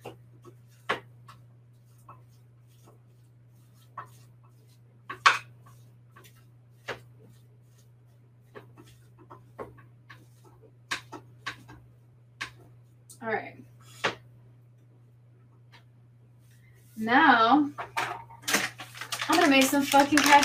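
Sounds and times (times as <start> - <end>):
spatula tapping and scraping a frying pan breaking apart plant-based ground meat: 0.4 - 11.1
speech: 13.2 - 13.6, 17.0 - 17.9, 19.4 - 20.4.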